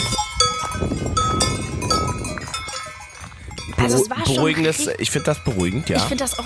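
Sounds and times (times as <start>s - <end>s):
cowbells clanking and jingling: 0.0s - 6.4s
speech: 3.8s - 6.4s.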